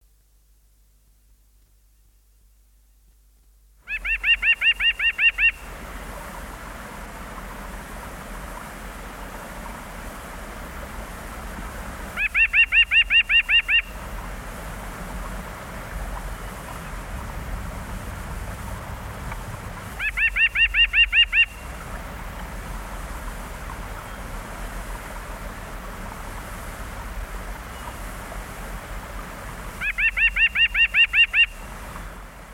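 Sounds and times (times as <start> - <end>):
white-breasted nuthatch calling: 3.8 - 5.7, 12.1 - 14.2, 19.3 - 22.0, 29.8 - 32.2
songbirds singing: 3.8 - 8.0, 9.5 - 14.4, 15.0 - 32.5.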